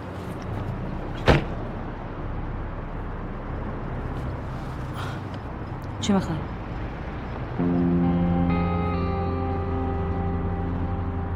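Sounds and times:
steady low rumble: 0:00.0 - 0:11.3
car door shutting as someone gets into a car: 0:01.2 - 0:01.6
speech: 0:06.1 - 0:06.6.

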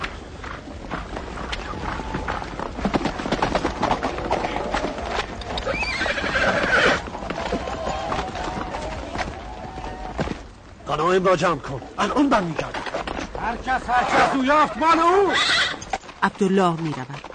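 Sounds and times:
horse hooves clip-clopping while walking: 0:00.0 - 0:17.3
horse whinnying: 0:04.1 - 0:10.1, 0:13.9 - 0:16.0
speech: 0:11.1 - 0:12.8, 0:13.5 - 0:15.6, 0:16.2 - 0:17.2.

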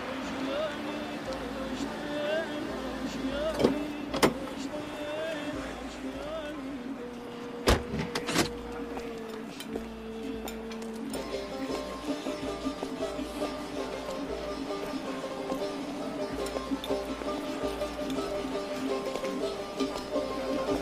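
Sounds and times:
car engine idling while parking in front of a café restaurant: 0:00.0 - 0:20.8
mechanical clicks and clunks: 0:03.4 - 0:04.7, 0:07.1 - 0:09.8.

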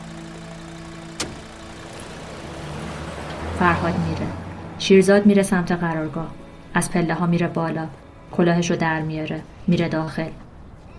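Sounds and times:
car engine idling with a steady low hum: 0:00.0 - 0:07.0
speech: 0:03.6 - 0:10.4.

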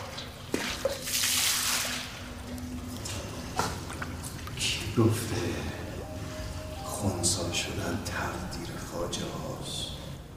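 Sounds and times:
water being poured onto a person: 0:00.0 - 0:04.8
water dripping: 0:00.0 - 0:07.7
low steady hum: 0:02.1 - 0:10.3
speech: 0:05.0 - 0:05.7, 0:07.0 - 0:09.9.

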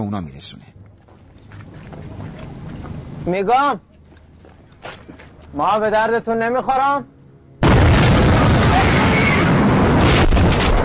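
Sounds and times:
speech: 0:00.0 - 0:01.0, 0:03.2 - 0:03.9, 0:04.8 - 0:07.1
loud rumbling explosion: 0:07.6 - 0:10.8.

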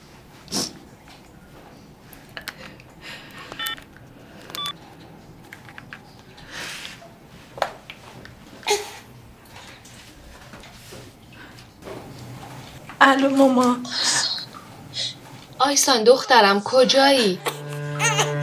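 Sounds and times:
mobile phone keypad dialing tones in a toilet stall: 0:03.5 - 0:03.8, 0:04.5 - 0:04.8
speech: 0:13.1 - 0:14.1, 0:15.7 - 0:17.5.

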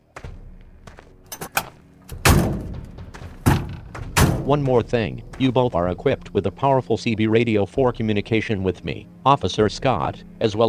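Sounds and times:
car doors clicking open and slamming shut: 0:01.3 - 0:04.5
speech: 0:04.5 - 0:10.6.

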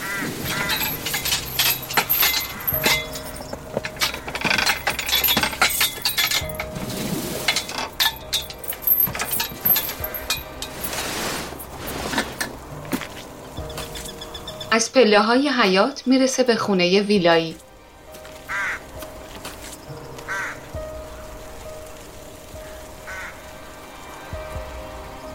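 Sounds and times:
snow-covered iron gate clanking open: 0:00.0 - 0:12.7
speech: 0:14.8 - 0:17.7.

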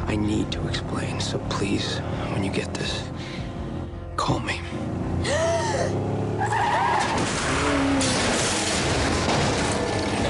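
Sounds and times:
speech: 0:00.1 - 0:03.4, 0:04.3 - 0:06.2
car tires squealing as a car skids on a dark country road: 0:05.2 - 0:10.2
car smashing into a figure and flipping onto its roof: 0:06.4 - 0:10.2
scraping debris from a flipping car: 0:07.0 - 0:10.2.

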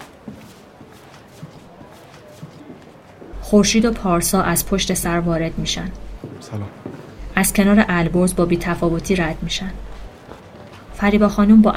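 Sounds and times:
slow footsteps pacing across a hard floor: 0:00.0 - 0:03.6, 0:06.1 - 0:07.2, 0:09.8 - 0:11.3
faint murmur of room noise: 0:00.0 - 0:11.7
speech: 0:03.5 - 0:06.8, 0:07.4 - 0:09.9, 0:11.0 - 0:11.7.

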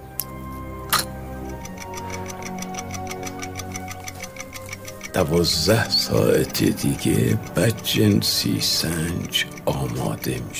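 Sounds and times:
sharp clicks of a pocket watch: 0:00.2 - 0:10.5
gold-coloured pocket watch ticking: 0:00.9 - 0:10.5
speech: 0:05.2 - 0:10.5.

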